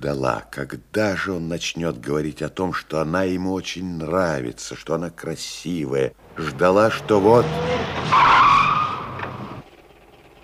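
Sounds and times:
speech: 0:00.0 - 0:08.6
car engine rumble: 0:06.2 - 0:10.4
car tire squealing while skidding to a halt: 0:06.9 - 0:09.7.

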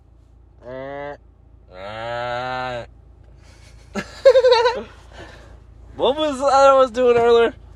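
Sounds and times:
person imitating a goat call: 0:00.6 - 0:02.9
laughter: 0:03.6 - 0:05.0
speech: 0:06.1 - 0:07.6.

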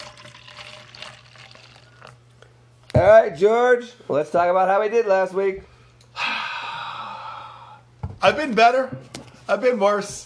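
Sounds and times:
beer pouring from a growler into a glass: 0:00.0 - 0:02.2
speech: 0:03.0 - 0:05.7, 0:08.2 - 0:10.2.

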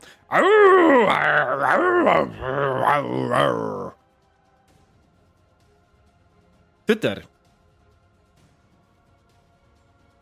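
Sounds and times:
human voice imitating wolves howling and growling: 0:00.0 - 0:04.0
speech: 0:00.3 - 0:04.0, 0:06.9 - 0:07.3.

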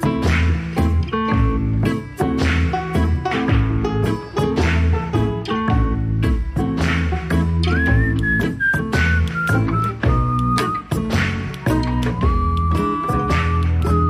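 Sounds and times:
full loud band backing with a steady beat: 0:00.0 - 0:14.0
person whistling a sliding sustained melody: 0:07.4 - 0:14.0.

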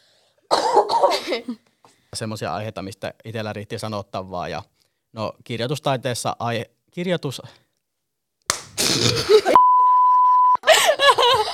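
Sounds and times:
rough throaty coughs: 0:00.5 - 0:01.6, 0:08.8 - 0:09.6
speech: 0:01.0 - 0:07.6, 0:08.9 - 0:09.6
laughter: 0:10.6 - 0:11.5.

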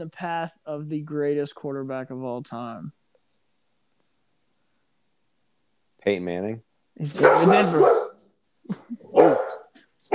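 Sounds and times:
speech: 0:00.0 - 0:03.0, 0:06.0 - 0:08.0
dog barking: 0:07.2 - 0:08.2, 0:09.2 - 0:10.1.

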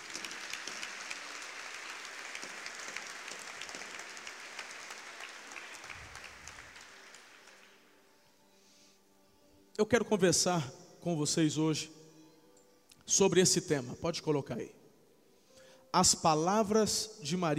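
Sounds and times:
audience applauding: 0:00.0 - 0:08.0
speech: 0:09.8 - 0:12.0, 0:13.1 - 0:14.8, 0:15.9 - 0:17.5.

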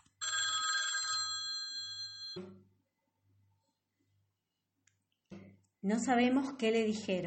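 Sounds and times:
old-style telephone bell ringing: 0:00.2 - 0:02.5
speech: 0:02.4 - 0:02.7, 0:05.8 - 0:07.2.

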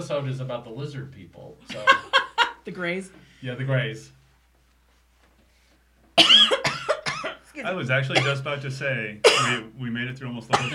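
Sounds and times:
speech: 0:00.0 - 0:04.2, 0:07.6 - 0:10.7
laughter: 0:01.7 - 0:02.7
harsh hacking cough: 0:06.2 - 0:07.4, 0:08.2 - 0:08.4, 0:09.2 - 0:09.7, 0:10.5 - 0:10.7.

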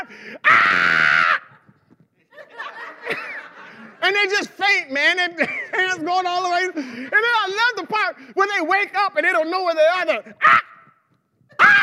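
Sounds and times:
breathy gasps: 0:00.0 - 0:00.5, 0:06.8 - 0:07.1
loud high-pitched scream on a ride: 0:00.5 - 0:01.6, 0:11.6 - 0:11.8
laughter: 0:01.4 - 0:04.6, 0:05.2 - 0:07.6
speech: 0:04.2 - 0:10.6.

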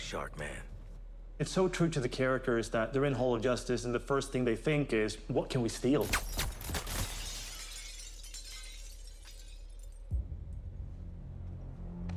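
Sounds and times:
speech: 0:00.1 - 0:00.7, 0:01.4 - 0:06.4
glass shattering: 0:06.0 - 0:10.1
scattered tinkling glass debris: 0:06.4 - 0:10.1.

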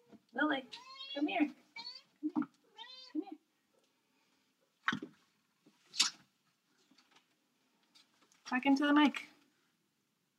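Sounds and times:
speech: 0:00.4 - 0:01.6, 0:08.6 - 0:09.3
pet cat meowing: 0:01.8 - 0:03.3.

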